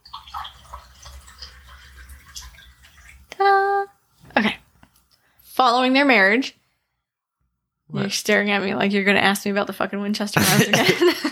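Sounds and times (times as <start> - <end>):
wine glugging and trickling into a glass: 0.0 - 3.3
speech: 5.6 - 6.6, 8.0 - 11.3.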